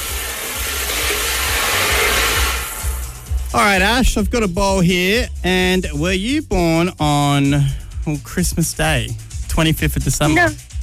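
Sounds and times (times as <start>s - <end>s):
lottery ball drum spinning with a mechanical whir: 0.0s - 3.6s
speech: 3.6s - 10.7s.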